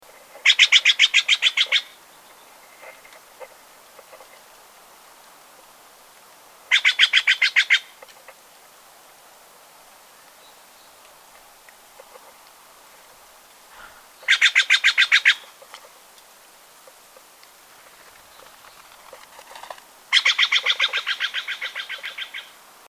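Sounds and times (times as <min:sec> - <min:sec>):
Steller's jay Cyanocitta stelleri macrolopha: 0:00.4 - 0:04.3, 0:06.6 - 0:08.4, 0:11.9 - 0:22.6.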